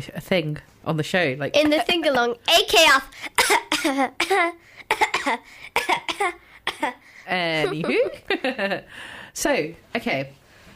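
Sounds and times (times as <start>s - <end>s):
speech: 0.0s - 10.7s
hoarse voiced coughing from hay fever: 3.3s - 7.0s.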